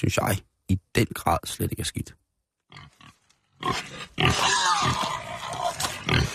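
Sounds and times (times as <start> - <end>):
speech: 0.0 - 2.9, 3.6 - 5.2
pig grunting, squealing and oinking: 2.7 - 6.3.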